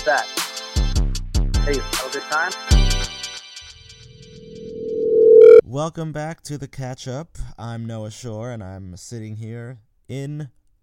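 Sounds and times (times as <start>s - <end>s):
speech: 0.0s - 0.4s, 1.7s - 3.1s, 5.7s - 10.6s
phone ringtone with pulsing high-pitched tone over low drone: 4.4s - 5.6s.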